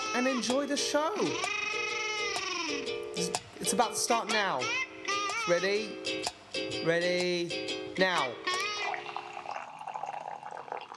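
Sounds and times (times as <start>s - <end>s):
speech: 0.2s - 1.7s, 2.7s - 4.9s, 5.5s - 8.5s
coffee pouring into a cup: 8.8s - 10.9s.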